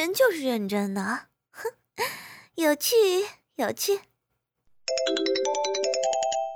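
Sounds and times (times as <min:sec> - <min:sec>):
speech: 0:00.1 - 0:01.3, 0:02.6 - 0:04.1
phone ringtone playing a bright electronic melody: 0:04.9 - 0:06.5.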